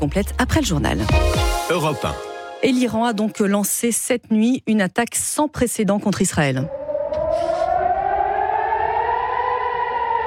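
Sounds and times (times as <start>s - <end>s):
speech: 0.0s - 6.8s
air-raid warning sirens wailing: 6.7s - 10.2s.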